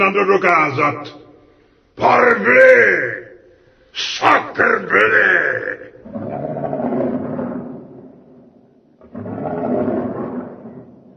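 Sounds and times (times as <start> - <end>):
speech: 0.0 - 1.2, 2.0 - 3.2, 4.0 - 6.5
lion roaring: 6.0 - 11.1.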